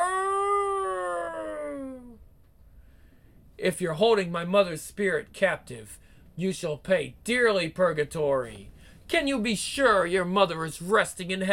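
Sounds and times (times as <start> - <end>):
wolf howling: 0.0 - 2.2
speech: 3.6 - 11.5.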